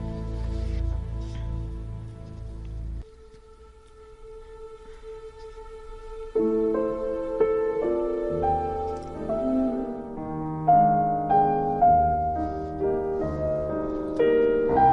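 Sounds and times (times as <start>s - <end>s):
melodic instrumental music with sustained harmonic tones: 0.0s - 14.9s.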